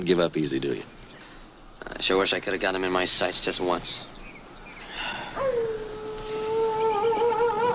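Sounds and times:
speech: 0.0s - 1.0s, 2.0s - 4.2s
low hiss: 0.0s - 7.7s
wolf howling: 5.2s - 7.7s.

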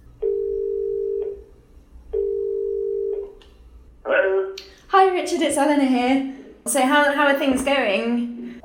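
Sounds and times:
telephone ringback tone of a call to Northern Ireland: 0.2s - 1.5s, 2.2s - 3.2s
speech: 5.2s - 8.3s.

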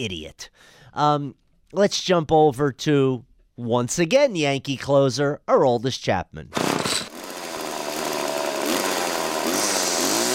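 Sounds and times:
speech: 0.0s - 6.6s
chainsaw running: 6.5s - 10.3s.

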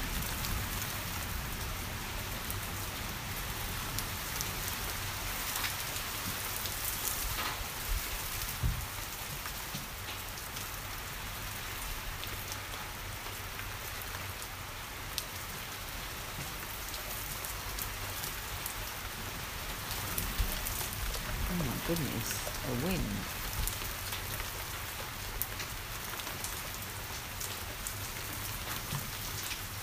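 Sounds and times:
heavy rain pouring down: 0.0s - 29.8s
speech: 21.9s - 23.3s.

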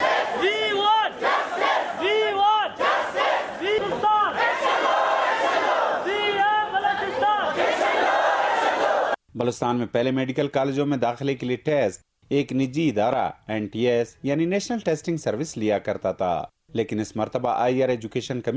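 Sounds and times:
large crowd of male and female students chanting slogans in protest: 0.0s - 9.2s
speech: 9.4s - 18.5s.

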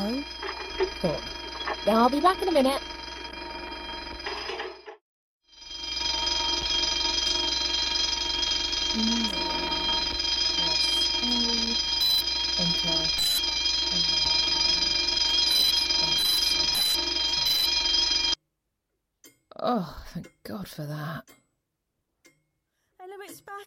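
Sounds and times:
alarm system ringing with a harsh bell-like tone: 0.0s - 18.4s
speech: 1.0s - 2.9s, 9.0s - 9.4s, 19.7s - 21.4s, 23.3s - 23.6s.

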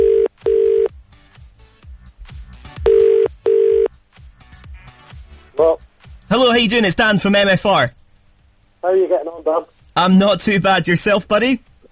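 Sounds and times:
telephone tones from an outgoing call to a mobile number: 0.0s - 0.9s, 2.9s - 3.9s
quiet rhythmic music: 0.0s - 11.8s
speech: 6.6s - 8.0s, 8.8s - 11.7s.

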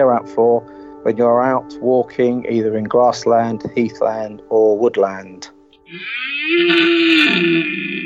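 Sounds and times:
speech: 0.0s - 8.0s
red deer stag roaring during the rut: 5.9s - 8.0s.

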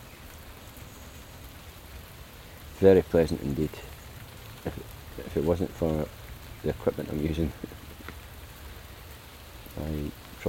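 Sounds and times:
steady rain falling outdoors: 0.0s - 10.4s
speech: 2.8s - 4.0s, 4.6s - 7.7s, 9.8s - 10.4s.

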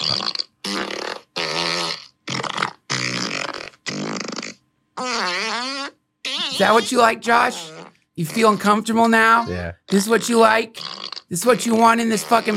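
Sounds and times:
person blowing wet raspberry noises imitating farts: 0.0s - 8.8s, 10.8s - 11.3s
speech: 6.6s - 12.5s.

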